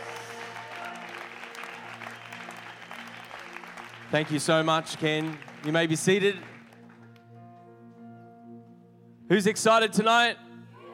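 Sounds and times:
large audience applauding: 0:00.0 - 0:07.3
speech: 0:04.1 - 0:06.5, 0:09.3 - 0:10.4.

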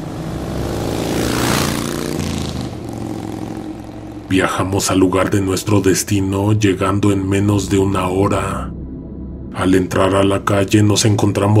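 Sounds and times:
motorcycle engine droning: 0:00.0 - 0:06.0
speech: 0:04.3 - 0:08.8, 0:09.6 - 0:11.5.

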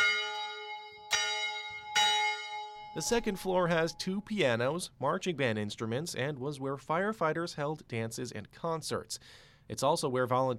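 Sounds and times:
old firehouse bell rung by pulling a rope: 0:00.0 - 0:04.5
speech: 0:02.9 - 0:10.5.

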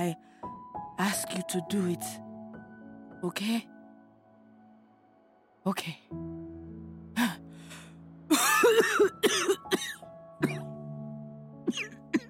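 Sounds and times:
speech: 0:00.0 - 0:00.3, 0:01.0 - 0:02.2, 0:03.2 - 0:03.7, 0:05.6 - 0:06.4, 0:08.8 - 0:09.9
soft raspy coughing: 0:08.3 - 0:10.7, 0:11.7 - 0:12.2.

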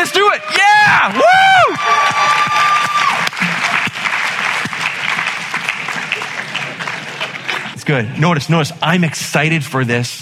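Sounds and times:
large audience clapping and cheering: 0:00.0 - 0:08.0
speech: 0:07.9 - 0:10.2.

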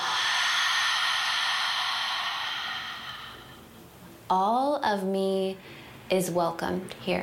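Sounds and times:
open-mouth exhale during a guided breathing exercise: 0:00.0 - 0:03.8
speech: 0:04.3 - 0:07.2.

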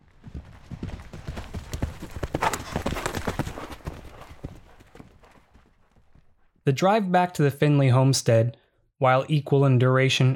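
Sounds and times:
horse hooves clip-clopping on a hard surface: 0:00.0 - 0:06.6
speech: 0:06.7 - 0:10.3.

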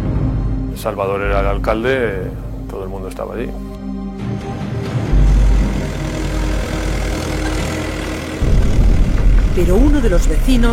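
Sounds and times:
speech: 0:00.8 - 0:04.5, 0:09.6 - 0:10.7
heavy tractor engine revving: 0:04.4 - 0:10.7.

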